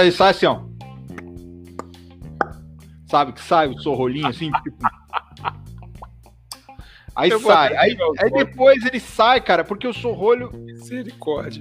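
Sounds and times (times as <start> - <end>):
speech: 0.0 - 0.7, 3.1 - 5.0, 7.2 - 11.6
voice imitating a cork being pulled out with mouth pops: 1.1 - 2.6, 4.2 - 6.7
laughter: 4.1 - 6.1, 7.3 - 8.7.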